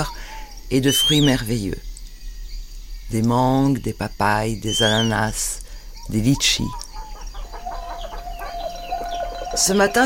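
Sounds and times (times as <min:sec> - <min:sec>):
speech: 0:00.0 - 0:01.9, 0:03.1 - 0:06.8, 0:09.6 - 0:10.0
faint outdoor hum: 0:00.0 - 0:10.0
rooster crowing: 0:06.9 - 0:10.0.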